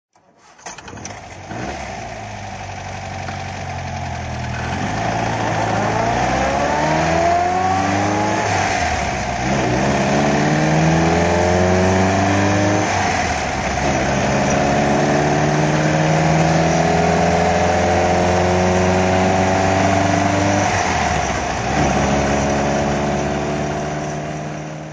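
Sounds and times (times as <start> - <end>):
MG TD car driving: 0.6 - 24.9.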